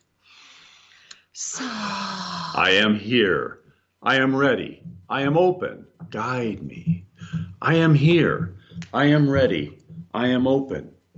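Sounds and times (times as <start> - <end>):
deep breath in during a guided relaxation: 0.2 - 1.2
speech: 1.4 - 1.9, 2.6 - 11.0.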